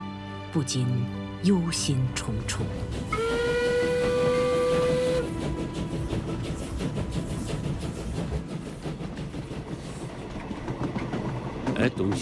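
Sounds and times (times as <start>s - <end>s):
speech: 0.5s - 3.5s, 11.8s - 12.2s
steam train rolling and hissing on the way to Hangzhou: 1.4s - 12.2s
steam train whistle: 3.1s - 7.4s.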